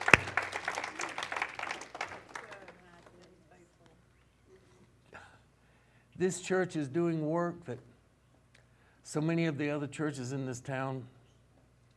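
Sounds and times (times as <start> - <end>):
congregation applauding: 0.0 - 3.4
speech: 6.2 - 7.9, 9.1 - 11.2.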